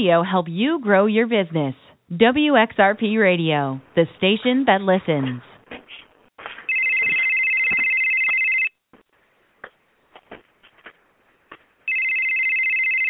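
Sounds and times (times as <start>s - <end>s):
speech: 0.0s - 5.5s
telephone ringing in long loud electronic bursts: 6.7s - 8.8s, 11.9s - 13.0s.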